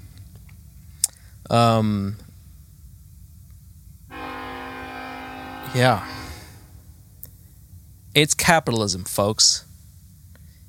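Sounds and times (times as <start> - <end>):
speech: 1.4 - 2.2, 5.8 - 6.2, 8.2 - 9.7
train horn blasts: 4.1 - 7.1.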